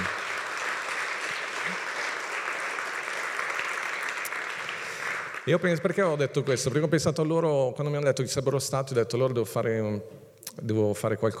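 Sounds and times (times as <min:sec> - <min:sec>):
congregation applauding: 0:00.0 - 0:06.2
speech: 0:05.5 - 0:11.3.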